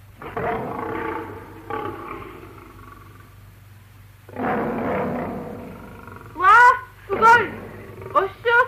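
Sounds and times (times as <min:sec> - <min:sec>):
person imitating a lion's roar with rough growling bursts: 0:00.2 - 0:03.3, 0:04.3 - 0:08.5
excited voices shouting: 0:06.4 - 0:07.5.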